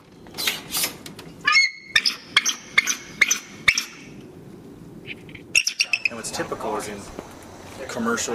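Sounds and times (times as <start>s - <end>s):
bald eagle calling with high squeaky chirps at a raptor center: 0.4s - 4.2s, 5.1s - 6.2s
speech: 6.4s - 8.3s.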